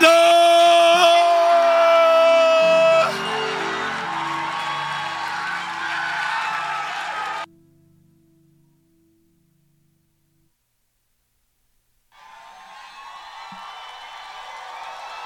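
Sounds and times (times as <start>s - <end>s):
loud crowd cheering and whooping: 0.0s - 7.5s, 12.2s - 15.2s
audience applause: 0.9s - 7.5s, 12.2s - 15.2s.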